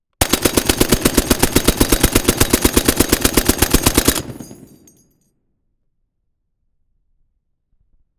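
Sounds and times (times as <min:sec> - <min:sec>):
Browning M2 machine gun burst in street: 0:00.2 - 0:05.0.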